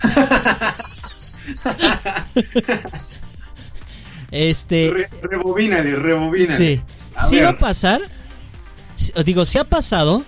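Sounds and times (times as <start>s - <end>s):
people laughing softly: 0.0s - 3.1s
speech: 0.0s - 3.2s, 4.3s - 8.1s, 9.1s - 10.2s
cricket chirping in short high trills: 0.3s - 1.8s, 2.9s - 3.2s.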